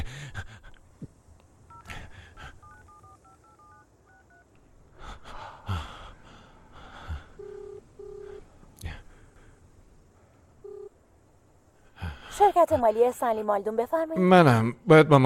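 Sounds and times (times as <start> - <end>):
soft breathing: 0.0 - 3.2, 4.8 - 10.6, 11.6 - 13.1
slower, longer phone tones: 1.7 - 2.0, 2.6 - 4.5, 7.4 - 8.4, 10.6 - 11.0
speech: 12.5 - 15.2.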